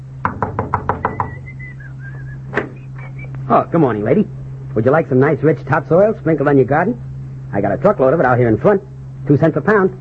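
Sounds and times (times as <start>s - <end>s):
steady low hum: 0.0s - 9.9s
knocking on a door: 0.2s - 1.4s
faint wavering whistle: 1.0s - 3.4s
speech: 3.5s - 9.9s.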